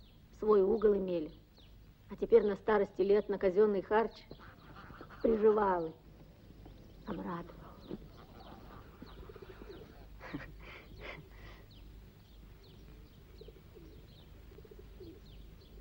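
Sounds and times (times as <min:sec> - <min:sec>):
smaller birds chirping: 0:00.0 - 0:15.7
steady hum: 0:00.0 - 0:15.7
speech: 0:00.4 - 0:01.4, 0:02.1 - 0:04.5, 0:05.2 - 0:06.0, 0:07.1 - 0:08.1
pigeons cooing: 0:04.2 - 0:15.7.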